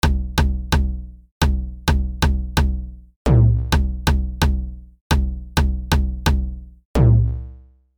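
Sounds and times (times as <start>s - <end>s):
robotic beat: 0.0s - 7.6s.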